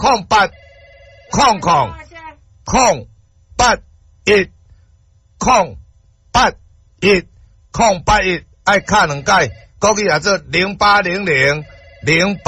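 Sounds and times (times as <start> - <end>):
speech: 0.0 - 0.6, 1.3 - 2.1, 2.7 - 4.6, 5.4 - 5.8, 6.4 - 12.4
telephone bell ringing: 0.5 - 2.0, 8.8 - 9.7, 11.4 - 12.4.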